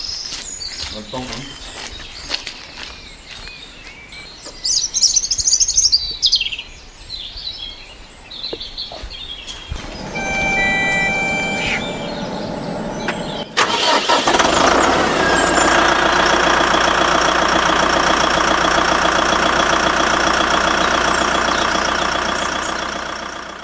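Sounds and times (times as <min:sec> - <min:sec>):
speech: 0:00.9 - 0:01.7
tractor engine cranking and catching: 0:09.7 - 0:23.6.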